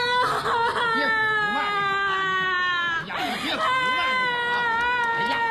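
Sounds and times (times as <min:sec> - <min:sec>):
person crying and sobbing with a strained wailing tone: 0:00.1 - 0:05.4.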